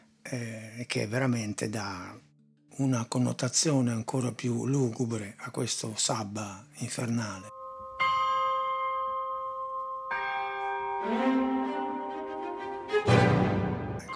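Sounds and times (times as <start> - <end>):
speech: 0.3 - 7.6
two deep church bells tolling: 7.2 - 14.1
orchestra playing: 10.6 - 14.1.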